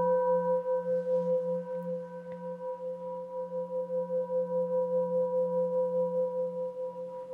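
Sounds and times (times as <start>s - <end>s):
Tibetan singing bowl ringing with a pulsing, wavering tone: 0.0s - 7.3s.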